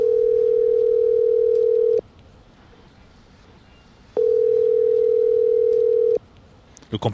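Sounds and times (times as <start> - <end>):
telephone ringback tone of long electronic beeps: 0.0 - 2.0, 4.2 - 6.2
speech: 6.9 - 7.1.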